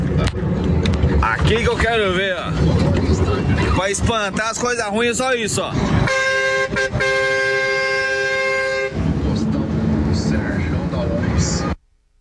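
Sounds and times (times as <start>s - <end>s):
rumbling truck engine: 0.0s - 11.9s
road noise: 0.0s - 12.2s
speech: 1.5s - 7.2s
loud truck air horn blaring: 6.0s - 9.2s.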